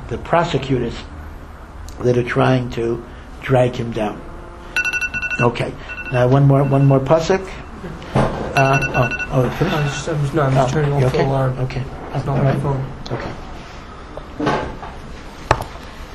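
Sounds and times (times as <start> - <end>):
speech: 0.1 - 1.2, 2.0 - 4.3, 5.4 - 13.4
phone alarm ringing with a repeating electronic tone: 4.8 - 7.7, 8.6 - 10.1.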